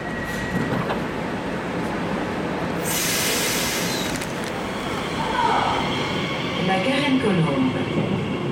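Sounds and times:
regional commuter train rumbling and clattering: 0.0 - 8.5
burst of hissing air on a regional commuter train: 2.8 - 4.3.

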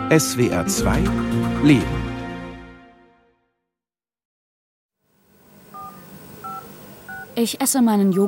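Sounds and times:
speech: 0.1 - 2.1, 7.4 - 8.2
soft hiss: 5.1 - 8.2
telephone keypad tones: 5.7 - 7.3.

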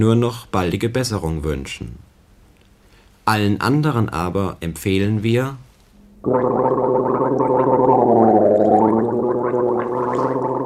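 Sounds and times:
speech: 0.0 - 2.1, 3.2 - 7.1
long steady gargling: 6.2 - 10.6.

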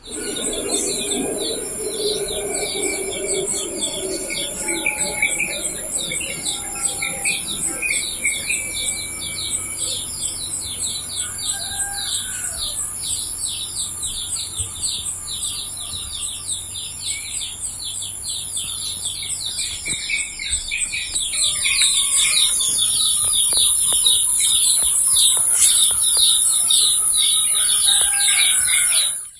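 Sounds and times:
rooster crowing: 0.0 - 13.1, 27.0 - 29.3
birds chirping and trilling outdoors in the morning: 0.0 - 29.3.

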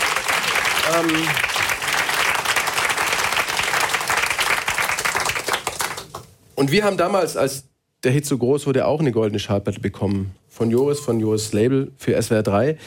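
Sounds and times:
crowd applauding: 0.0 - 6.3
speech: 0.9 - 1.6, 6.6 - 12.8.

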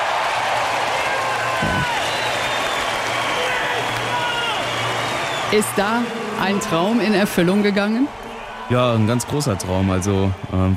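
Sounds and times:
packed hall crowd cheering and applauding at the Olympic Games: 0.0 - 10.7
speech: 5.5 - 10.7.

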